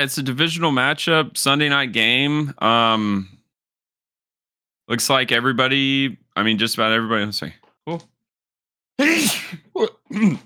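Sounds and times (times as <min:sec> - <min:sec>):
speech: 0:00.0 - 0:03.4, 0:04.9 - 0:08.1, 0:09.0 - 0:10.4
person grunting: 0:09.0 - 0:10.4
person sneezing loudly: 0:09.0 - 0:10.4.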